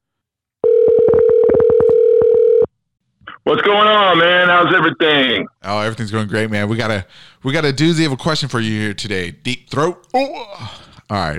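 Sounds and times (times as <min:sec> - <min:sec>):
telephone dial tone: 0:00.6 - 0:02.7
speech: 0:03.5 - 0:11.3.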